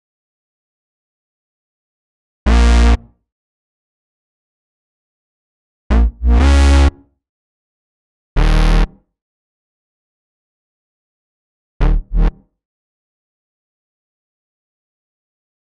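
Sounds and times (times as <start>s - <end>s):
D sharp minor electro bass synth: 2.5s - 3.0s, 5.9s - 6.9s, 8.4s - 8.9s, 11.8s - 12.3s.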